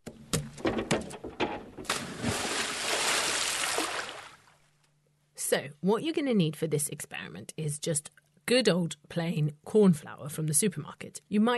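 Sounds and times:
sharp knocks: 0:00.0 - 0:02.4
splash of someone jumping into water: 0:01.8 - 0:04.5
loud rushing churning water: 0:02.1 - 0:04.4
speech: 0:05.5 - 0:11.5.

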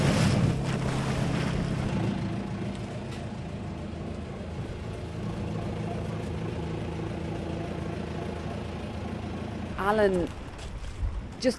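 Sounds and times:
water washing around a boat hull: 0:00.0 - 0:03.0
oyster fishing boat engine droning in Tralee Bay: 0:00.0 - 0:11.5
speech: 0:09.8 - 0:10.4, 0:11.4 - 0:11.5.

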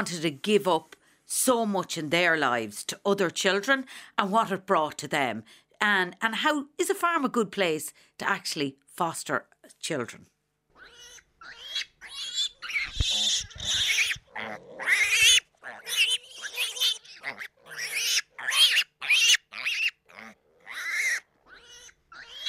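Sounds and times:
speech: 0:00.0 - 0:10.3, 0:14.4 - 0:16.2
young Duroc piglet grunting and squealing on a small pig farm in County Monaghan: 0:10.7 - 0:22.4.

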